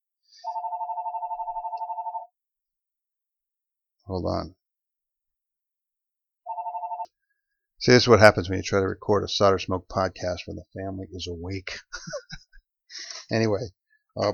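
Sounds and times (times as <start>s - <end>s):
telephone ringing with a rapid warbling trill: 0.4s - 2.4s, 6.4s - 7.2s
speech: 4.1s - 4.6s, 7.8s - 12.4s, 13.3s - 14.3s
laughter: 11.7s - 13.3s.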